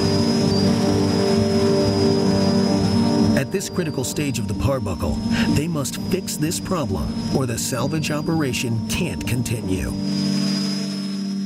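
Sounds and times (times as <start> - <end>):
broadband rushing noise: 0.0 - 11.4
low mechanical hum: 0.0 - 11.4
small camera drone propellers whirring: 0.0 - 11.4
speech: 3.6 - 10.3.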